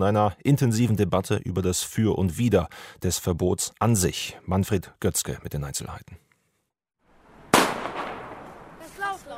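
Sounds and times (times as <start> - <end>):
speech: 0.0 - 6.2
firecracker bang in the street: 7.4 - 9.1.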